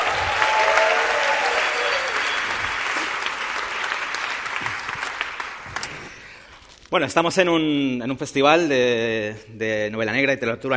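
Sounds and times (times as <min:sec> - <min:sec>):
audience applause: 0:00.0 - 0:06.3
speech: 0:06.9 - 0:10.7.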